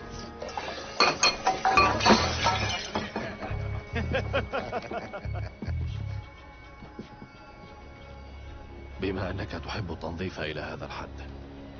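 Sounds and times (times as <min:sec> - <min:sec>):
glass shards tinkling: 0:01.0 - 0:03.5
glass shattering: 0:01.0 - 0:03.6
laughter: 0:03.0 - 0:06.0
speech: 0:09.1 - 0:11.4.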